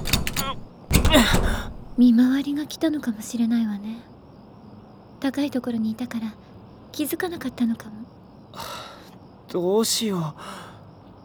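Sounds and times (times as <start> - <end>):
closed door rattling as it is pushed and tugged: 0.0 - 2.1
speech: 2.0 - 4.1, 5.2 - 8.8, 9.5 - 10.7.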